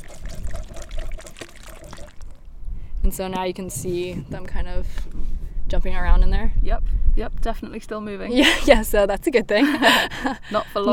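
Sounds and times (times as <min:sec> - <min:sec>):
water rinsed from a sieve pouring into a small vial: 0:00.0 - 0:02.5
speech: 0:03.1 - 0:10.9.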